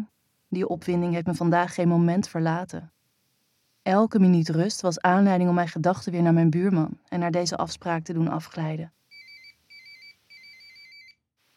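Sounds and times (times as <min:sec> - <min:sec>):
speech: 0:00.5 - 0:03.0, 0:03.8 - 0:09.0
phone ringing with a faint electronic trilling ringtone: 0:09.1 - 0:11.2.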